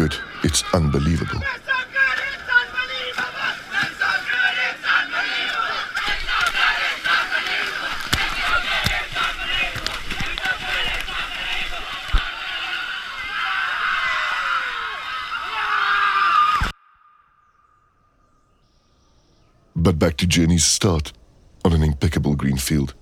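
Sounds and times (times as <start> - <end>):
water splashing in the sea: 0.0 - 13.2
crowd shouting and cheering while sprinting into the sea: 0.0 - 16.8
speech: 0.1 - 1.6, 19.9 - 22.9.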